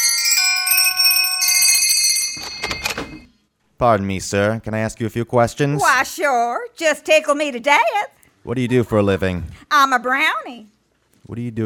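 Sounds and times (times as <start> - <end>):
doorbell at a workshop chiming: 0.0 - 3.3
speech: 3.8 - 10.7, 11.3 - 11.6.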